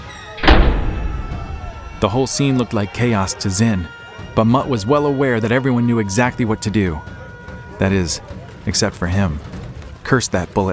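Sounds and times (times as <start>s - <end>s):
small mountain bunker door pulled shut from inside with a deep thud: 0.4s - 2.5s
speech: 2.0s - 7.2s, 7.8s - 10.7s.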